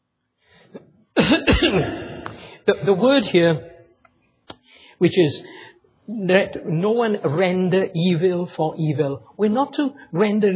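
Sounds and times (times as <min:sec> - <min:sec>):
harsh rasping throat clearing and coughing: 0:00.7 - 0:02.4
speech: 0:01.7 - 0:02.0, 0:02.7 - 0:03.7, 0:05.0 - 0:10.5.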